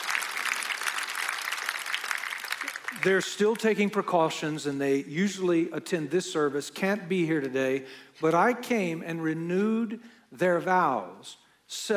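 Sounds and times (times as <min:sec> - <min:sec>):
congregation applauding at a service honoring a 70th wedding anniversary: 0:00.0 - 0:03.4
speech: 0:02.9 - 0:11.9.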